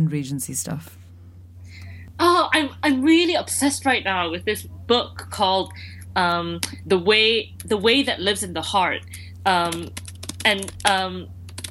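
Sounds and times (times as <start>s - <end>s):
speech: 0.0s - 1.1s, 2.2s - 11.4s
furious typing on a computer keyboard: 9.0s - 11.6s.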